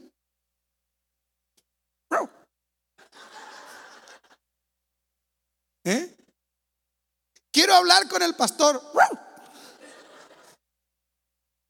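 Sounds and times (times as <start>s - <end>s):
person imitating a chihuahua yapping and whining: 2.1s - 2.5s, 8.9s - 9.4s
laughter: 3.0s - 4.4s, 9.4s - 10.6s
speech: 5.8s - 6.1s, 7.8s - 9.2s.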